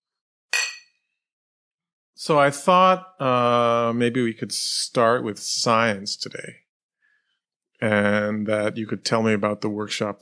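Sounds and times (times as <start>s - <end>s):
glasses clinking in a toast: 0.6s - 0.9s
speech: 2.2s - 6.6s, 7.8s - 10.1s.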